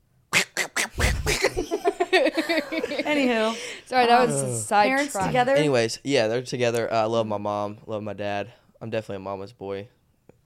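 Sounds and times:
person imitating a duck with loud nasal quacks: 0.4s - 1.6s
laughter: 1.1s - 3.7s
speech: 2.5s - 10.0s.

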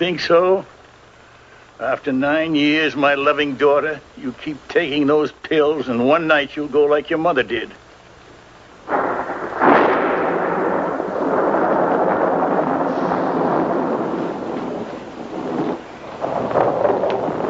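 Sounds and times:
speech: 0.0s - 0.7s, 1.8s - 7.8s
sharp thunder crack: 8.9s - 17.4s.

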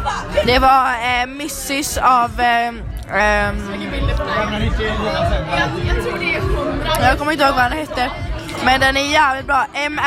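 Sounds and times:
crowd chatter in a bar: 0.0s - 10.0s
speech: 0.5s - 10.0s.

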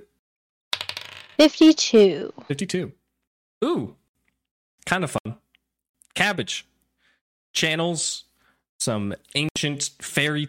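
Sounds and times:
percentile dice rolling across a table: 0.7s - 1.6s
speech: 1.4s - 3.0s, 3.6s - 4.0s, 4.8s - 5.4s, 6.2s - 6.7s, 7.6s - 10.4s.

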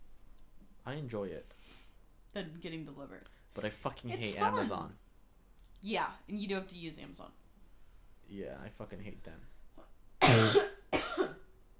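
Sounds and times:
speech: 0.9s - 5.0s, 5.8s - 7.4s, 8.3s - 9.5s
harsh forceful coughs: 10.2s - 11.5s.

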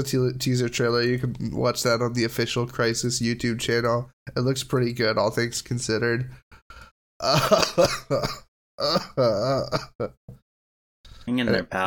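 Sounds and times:
speech: 0.0s - 6.5s, 7.2s - 10.4s, 11.2s - 11.8s
harsh throaty coughs in a coughing fit: 7.2s - 10.2s.

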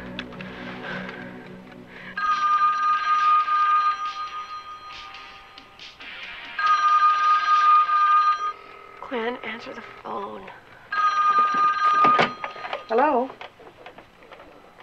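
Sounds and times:
telephone ringing: 2.2s - 5.7s, 6.3s - 9.3s, 10.9s - 13.3s
speech: 9.7s - 10.7s, 12.9s - 13.4s.

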